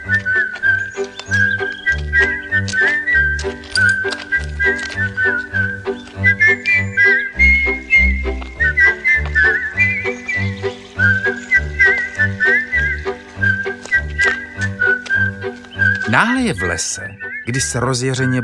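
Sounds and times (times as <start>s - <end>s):
cheerful whistled melody: 0.0s - 18.4s
speech: 16.2s - 18.4s.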